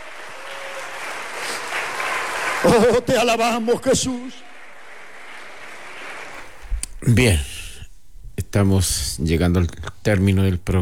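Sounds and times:
church congregation applauding: 0.0 - 6.6
speech: 2.6 - 4.5, 7.0 - 7.5, 8.5 - 10.8.

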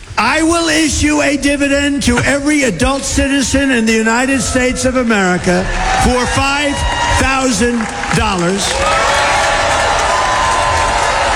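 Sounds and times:
crowd noise: 0.0 - 11.3
speech: 0.2 - 9.2
audience applauding a political speech: 4.2 - 11.3.

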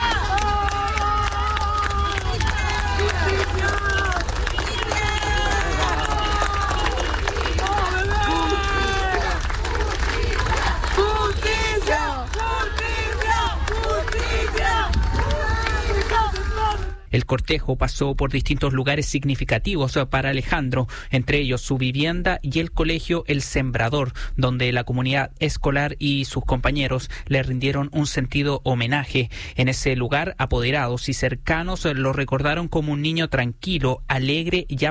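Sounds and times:
large crowd applauding outdoors at a funeral procession for a boy: 0.0 - 17.0
speech: 17.4 - 34.8.

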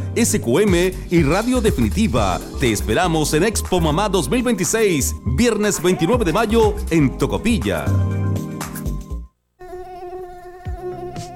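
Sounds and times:
speech: 0.2 - 8.2
Aedes aegypti mosquito buzzing: 9.5 - 11.3.

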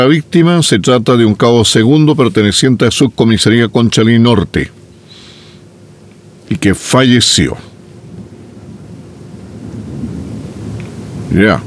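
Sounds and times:
speech: 0.0 - 4.8, 6.5 - 7.8, 11.3 - 11.6
low, rumble of distant thunder during an electrical storm: 8.0 - 11.6.

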